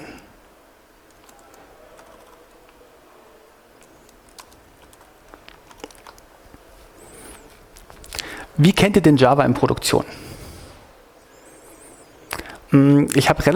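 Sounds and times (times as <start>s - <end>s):
steady low hiss: 0.0s - 13.5s
typing on a computer keyboard: 1.0s - 2.8s, 3.8s - 6.3s
speech: 8.6s - 10.2s, 12.7s - 13.5s.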